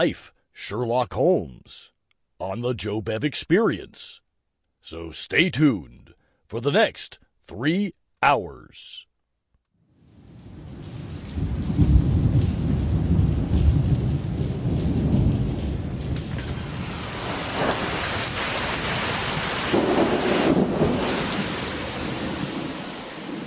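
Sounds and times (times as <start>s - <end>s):
speech: 0.0s - 4.2s, 4.8s - 9.1s
rain falling: 10.1s - 23.4s
thunder rumbling: 10.1s - 23.4s.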